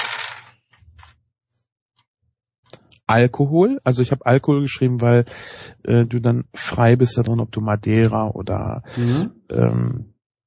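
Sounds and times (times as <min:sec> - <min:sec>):
dice clattering and tumbling across a hard surface: 0:00.0 - 0:00.6
speech: 0:03.1 - 0:10.1.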